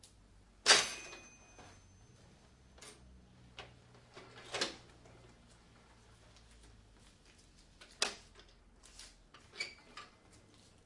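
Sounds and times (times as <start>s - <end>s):
cash register drawer being shut: 0.7s - 1.8s, 4.2s - 4.9s
metallic ringing tail of cash register drawer: 0.7s - 2.3s.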